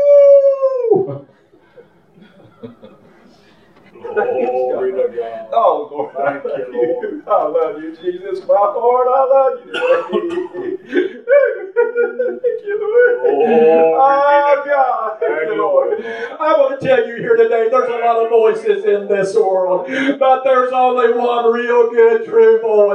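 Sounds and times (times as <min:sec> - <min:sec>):
person imitating a wolf howl: 0:00.0 - 0:01.2, 0:04.0 - 0:05.4, 0:12.9 - 0:14.5
laughter: 0:01.0 - 0:18.0
animated excited vocalizing: 0:03.8 - 0:16.4
speech: 0:05.2 - 0:11.2, 0:12.1 - 0:22.9.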